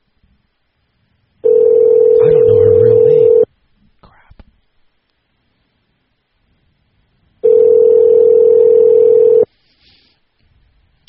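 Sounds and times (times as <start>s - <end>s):
outgoing phone call ringing tone: 1.4s - 3.5s, 7.4s - 9.5s.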